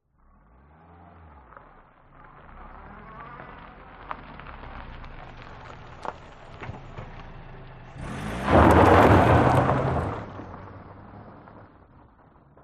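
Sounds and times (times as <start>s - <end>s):
car reversing on a dirt track: 0.2s - 12.3s
car wheels spinning away on a dirt track: 1.5s - 10.7s.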